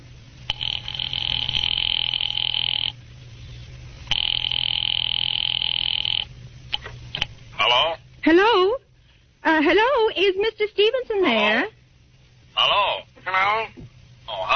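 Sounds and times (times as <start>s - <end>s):
faint low hum: 0.0s - 14.5s
telephone line ringing with long buzzing tones: 0.5s - 3.0s, 4.1s - 6.3s
speech: 9.6s - 11.8s.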